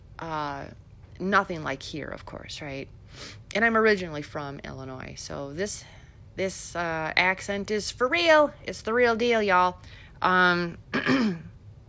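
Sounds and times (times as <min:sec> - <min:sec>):
speech: 0:00.2 - 0:11.5
person clearing throat: 0:10.9 - 0:11.6.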